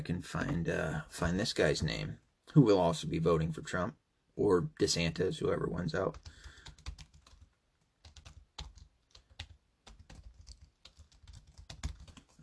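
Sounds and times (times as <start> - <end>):
speech: 0.0 - 7.0
rapid clacking of keys on a computer keyboard: 6.1 - 12.4.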